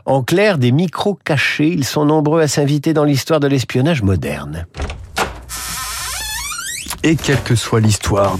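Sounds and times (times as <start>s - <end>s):
speech: 0.1s - 4.9s, 7.0s - 8.3s
door creaking open: 4.7s - 8.3s
door latch clicks: 4.8s - 5.5s.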